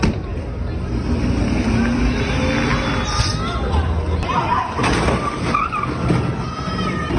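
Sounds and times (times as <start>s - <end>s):
noisy crowd: 0.0s - 7.1s
heavy tow truck engine revving and rumbling: 0.4s - 4.2s
people shouting: 2.5s - 7.1s.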